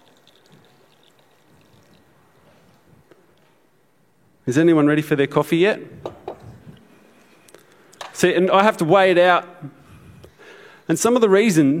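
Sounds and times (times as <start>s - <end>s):
water emptied out of a glass coffee carafe: 0.0s - 3.1s
speech: 4.5s - 6.1s, 8.2s - 9.8s, 10.9s - 11.7s.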